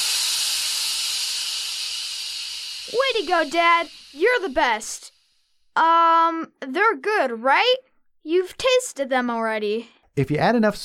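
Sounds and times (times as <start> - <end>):
steam hissing from an Instant Pot steaming dumplings: 0.0 - 5.6
speech: 2.9 - 5.1, 5.8 - 10.8.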